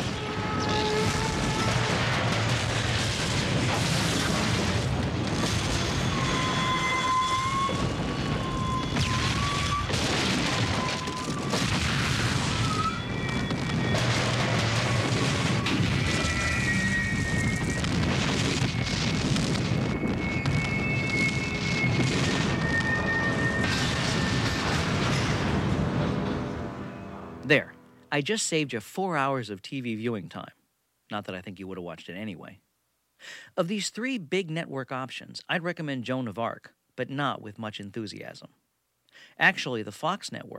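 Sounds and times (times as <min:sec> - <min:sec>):
high metallic screeches of a crashing train: 0:00.0 - 0:02.0, 0:05.5 - 0:09.9, 0:16.0 - 0:17.8, 0:20.3 - 0:25.3
runaway train crashing and exploding with crashing debris: 0:00.0 - 0:26.8
speech: 0:28.2 - 0:32.6, 0:33.2 - 0:38.6, 0:39.2 - 0:40.5.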